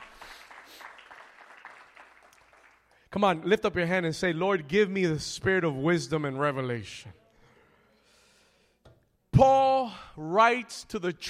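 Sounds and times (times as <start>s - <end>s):
crowd clapping during a sermon: 0.0s - 3.1s
speech: 3.1s - 7.2s, 9.4s - 9.6s, 10.2s - 11.2s.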